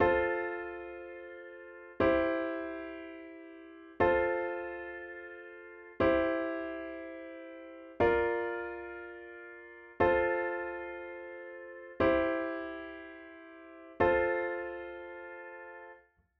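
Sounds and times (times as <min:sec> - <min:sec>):
ballad style piano chord progression in F with inversions: 0:00.0 - 0:16.0.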